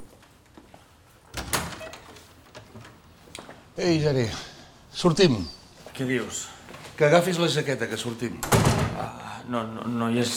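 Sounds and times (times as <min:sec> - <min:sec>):
door opening partway with a rattling sliding rush: 0:01.3 - 0:03.0
speech: 0:03.8 - 0:10.3.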